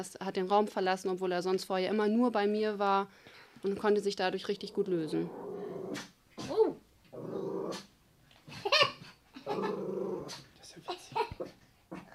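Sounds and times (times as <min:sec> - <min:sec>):
speech: 0:00.0 - 0:06.1
dog growling: 0:04.6 - 0:07.9, 0:09.4 - 0:10.6, 0:11.3 - 0:12.1.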